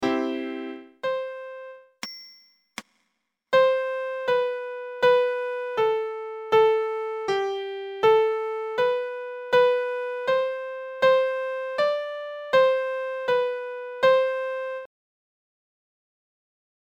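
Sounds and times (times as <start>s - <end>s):
piano: 0.0s - 2.0s, 3.5s - 14.9s.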